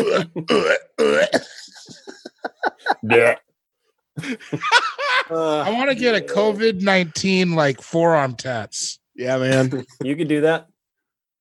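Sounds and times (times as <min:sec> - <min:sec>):
loud belches performed as the chorus of a cover song: 0:00.0 - 0:01.5
speech: 0:00.0 - 0:01.5, 0:03.1 - 0:03.4, 0:04.2 - 0:10.7
laughter: 0:01.5 - 0:03.4, 0:04.2 - 0:06.6.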